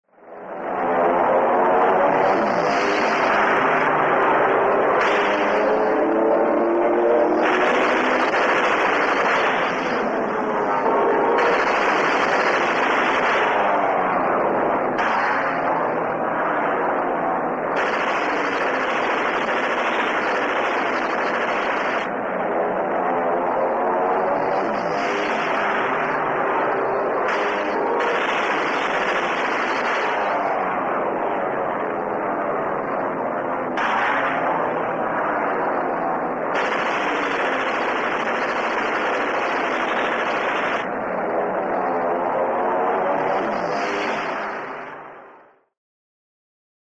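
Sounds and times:
air battle: 0:00.4 - 0:45.4.

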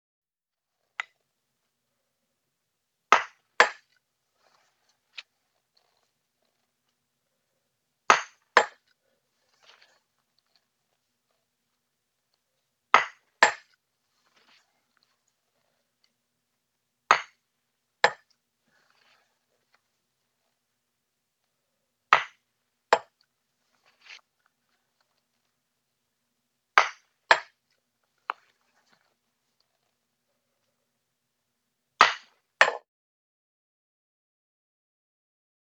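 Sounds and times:
croquet: 0:03.1 - 0:03.9, 0:08.1 - 0:08.9, 0:13.0 - 0:14.7, 0:17.1 - 0:17.4, 0:18.0 - 0:19.2, 0:22.1 - 0:23.2, 0:26.8 - 0:27.6, 0:32.0 - 0:32.8.

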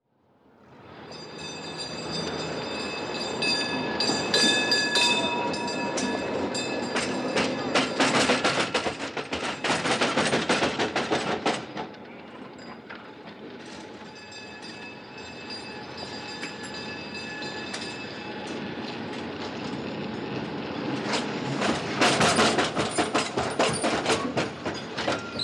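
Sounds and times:
old tram: 0:00.1 - 0:25.4.

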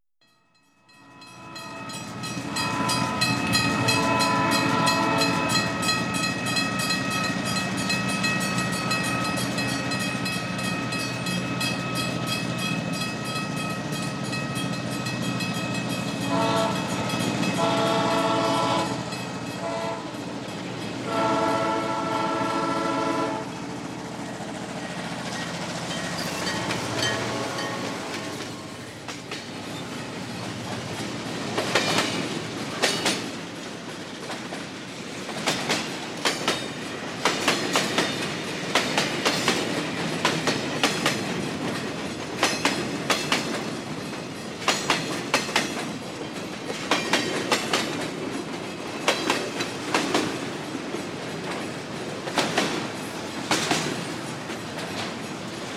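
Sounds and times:
train passing at a level crossing: 0:00.2 - 0:55.7
horn honking: 0:01.2 - 0:05.8, 0:16.3 - 0:16.9, 0:17.6 - 0:19.0, 0:19.6 - 0:20.2, 0:21.1 - 0:23.5, 0:26.6 - 0:28.6.

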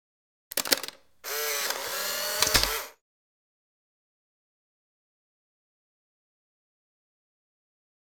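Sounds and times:
Polaroid instant camera: 0:00.5 - 0:03.0.

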